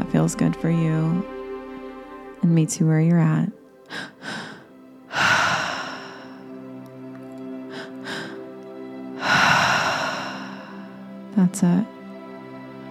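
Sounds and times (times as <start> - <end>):
soft sustained music tones: 0.0 - 12.8
speech: 0.2 - 1.4, 2.4 - 4.4, 11.4 - 12.0
deep breaths during a guided tri-active breathing exercise: 3.9 - 6.6, 7.7 - 8.5, 9.2 - 11.2.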